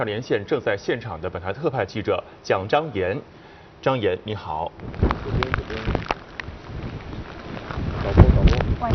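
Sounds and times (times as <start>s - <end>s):
speech: 0.0s - 6.0s
heavy typhoon rain in Dongtou District Wenzhou Zhejiang China: 3.2s - 8.9s
strong typhoon wind in Dongtou District Wenzhou Zhejiang China: 4.6s - 8.9s.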